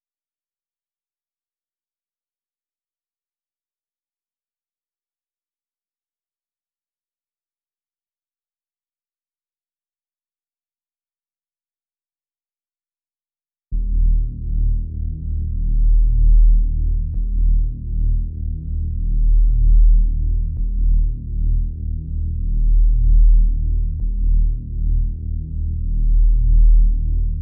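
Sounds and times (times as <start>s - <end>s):
D sharp minor bass melody loop at 140 BPM: 13.8s - 27.4s.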